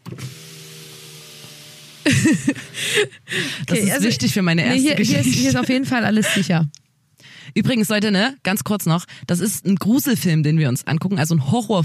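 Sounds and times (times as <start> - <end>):
car electric window motor whirring as glass slides open: 0.0 - 2.2
laughter: 2.1 - 6.6
speech: 2.2 - 6.8, 7.5 - 11.8.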